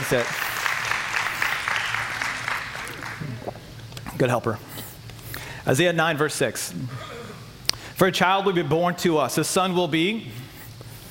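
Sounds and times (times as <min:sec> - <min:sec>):
speech: 0:00.0 - 0:00.5, 0:04.2 - 0:04.7, 0:05.6 - 0:07.2, 0:08.0 - 0:10.4
crowd clapping: 0:00.0 - 0:03.6.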